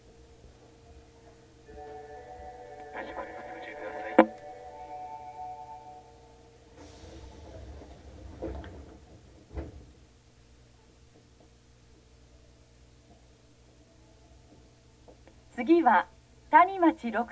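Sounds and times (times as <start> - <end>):
steady low subway train hum: 0.0 - 17.3
subway train doors sliding open: 6.7 - 10.1
soft thuds of subway train doors: 6.8 - 10.2
speech: 15.6 - 17.3.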